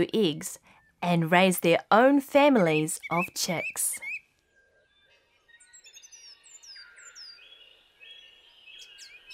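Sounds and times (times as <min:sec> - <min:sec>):
speech: 0:00.0 - 0:04.1
song thrush singing: 0:02.6 - 0:09.3.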